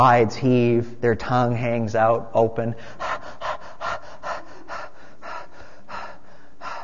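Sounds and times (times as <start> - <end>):
speech: 0.0 - 3.1
person imitating a thirsty dog panting: 2.8 - 6.8.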